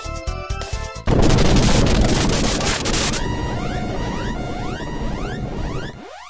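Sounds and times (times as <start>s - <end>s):
flying ship swooshing in and crash-landing: 1.1s - 6.2s
warbling electronic chirps: 1.7s - 6.2s.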